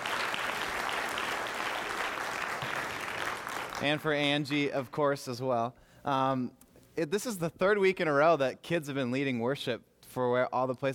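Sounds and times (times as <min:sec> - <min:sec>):
crowd applauding: 0:00.0 - 0:04.2
speech: 0:03.8 - 0:10.9.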